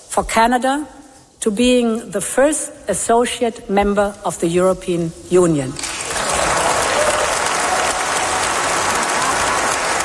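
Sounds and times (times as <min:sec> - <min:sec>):
speech: 0:00.2 - 0:06.0
standing ovation applause from members of the European Parliament: 0:05.8 - 0:10.0.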